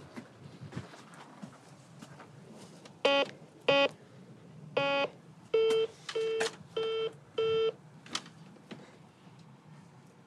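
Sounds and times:
modern intercom doorbell panel ringing with electronic beeps: 0:04.8 - 0:07.8.

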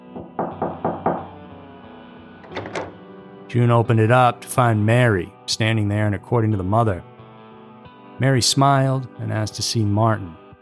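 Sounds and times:
firm knocks on a door: 0:00.0 - 0:01.5, 0:02.4 - 0:03.0
speech: 0:03.5 - 0:07.1, 0:08.2 - 0:10.4.

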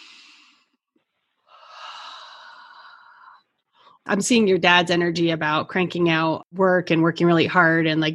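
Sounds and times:
person taking a deep breath in and out: 0:00.0 - 0:00.8, 0:01.4 - 0:04.0
speech: 0:04.1 - 0:08.1.

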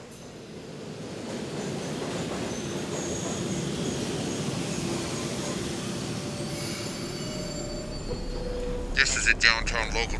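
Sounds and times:
subway train rolling into a station: 0:00.0 - 0:10.1
subway train metallic wheel squeals: 0:06.3 - 0:09.0.

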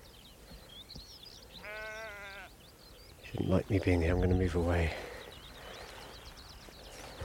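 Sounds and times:
faint bird chirps: 0:00.0 - 0:07.2
soft outdoor rustling: 0:00.0 - 0:07.2
single sheep bleating above the tree line: 0:01.6 - 0:02.6
speech: 0:03.3 - 0:05.1.

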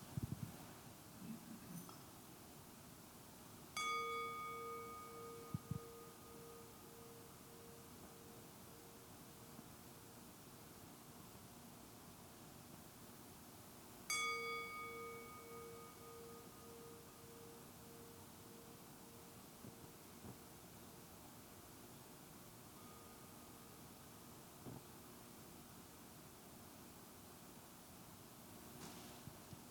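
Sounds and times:
hiss: 0:00.0 - 0:29.6
meditation bell ringing: 0:03.8 - 0:10.2, 0:14.1 - 0:20.2, 0:22.6 - 0:24.3.

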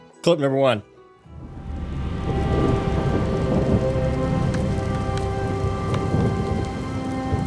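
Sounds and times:
speech: 0:00.2 - 0:00.9
low rumbling thunder: 0:01.3 - 0:07.4
sharp crackling drips: 0:01.3 - 0:07.4
steady loud pouring rain: 0:01.3 - 0:07.4.

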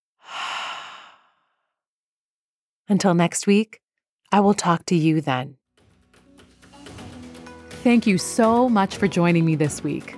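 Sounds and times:
long breathy exhale after a held deep breath: 0:00.2 - 0:01.6
speech: 0:02.9 - 0:05.6, 0:07.8 - 0:10.1.

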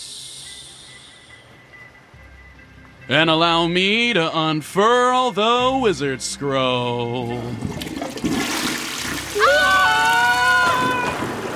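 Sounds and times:
speech: 0:03.1 - 0:08.0
deep foul-smelling water churning and sloshing as people drop into it: 0:07.3 - 0:11.5.

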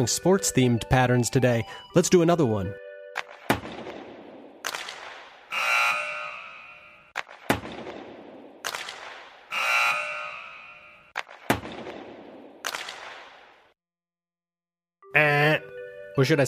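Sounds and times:
speech: 0:00.0 - 0:02.8, 0:16.2 - 0:16.4
hockey stick-and-puck cracks: 0:04.6 - 0:05.2, 0:08.6 - 0:09.3, 0:12.6 - 0:13.3
harsh electronic hockey end-of-match buzzer: 0:05.5 - 0:07.1, 0:09.5 - 0:11.1.

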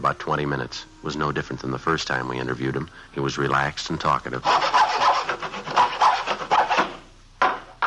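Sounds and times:
speech: 0:00.0 - 0:04.8
hacksaw sawing plywood: 0:04.4 - 0:07.0.

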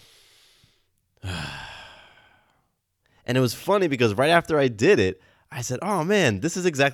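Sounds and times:
strong breathy exhale of a deep belly breath: 0:00.0 - 0:02.7
long soft inhale of a deep belly breath: 0:00.0 - 0:03.2
speech: 0:03.3 - 0:06.9.

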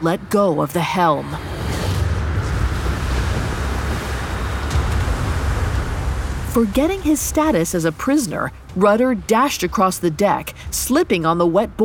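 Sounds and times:
speech: 0:00.0 - 0:01.5, 0:06.6 - 0:11.8
heavy roar of ocean waves at sea around a sailing ship: 0:00.8 - 0:10.8
wind at sea around a swaying sailing ship: 0:01.3 - 0:07.6.

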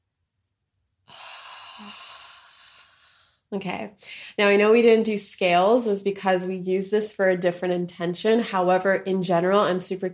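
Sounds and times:
deep breath in during a guided relaxation exercise: 0:01.1 - 0:04.4
speech: 0:01.8 - 0:02.3, 0:03.5 - 0:10.1.

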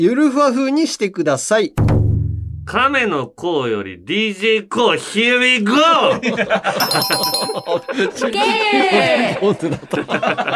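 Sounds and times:
speech: 0:00.0 - 0:02.0, 0:02.7 - 0:10.5
ding-dong chime sound effect: 0:06.8 - 0:08.2
people laughing: 0:08.5 - 0:10.5.

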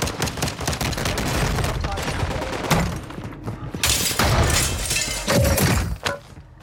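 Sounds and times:
rapid bursts of gunfire in a war zone: 0:00.0 - 0:02.8
crashing and sharp impacts: 0:03.8 - 0:06.0
glass skylight smashing: 0:03.8 - 0:06.0.

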